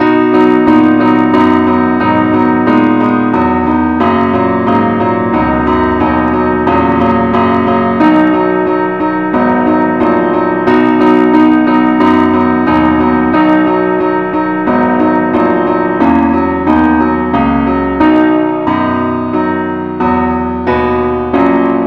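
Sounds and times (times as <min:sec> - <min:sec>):
keyboard playing only key B: 0:00.0 - 0:21.8.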